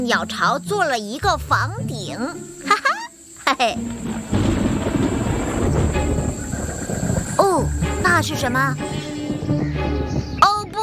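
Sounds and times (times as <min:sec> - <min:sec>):
speech: 0:00.0 - 0:04.6, 0:07.4 - 0:09.6
thunder rumbling as a storm approaches: 0:03.6 - 0:10.8.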